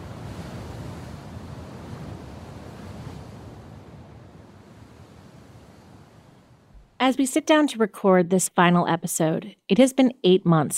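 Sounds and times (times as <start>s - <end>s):
heavy sea surf churning below cliffs: 0.0s - 6.6s
gusty wind buffeting the microphone: 0.0s - 6.8s
speech: 7.1s - 10.7s.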